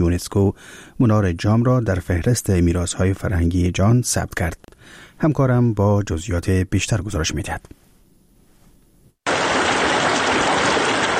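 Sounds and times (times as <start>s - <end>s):
speech: 0.0s - 7.8s
river water rushing at a confluence: 9.3s - 11.1s.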